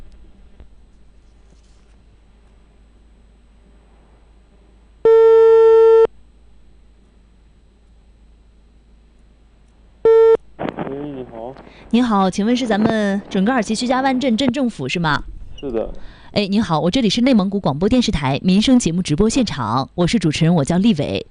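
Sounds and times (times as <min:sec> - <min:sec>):
telephone ringback tone while dialing a town government office number: 0:05.1 - 0:06.1, 0:10.1 - 0:10.4
speech: 0:11.0 - 0:21.2.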